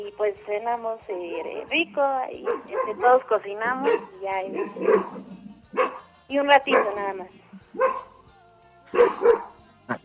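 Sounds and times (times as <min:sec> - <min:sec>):
speech: 0:00.0 - 0:08.0
dog barking: 0:02.4 - 0:07.1, 0:07.7 - 0:08.1, 0:08.9 - 0:10.0.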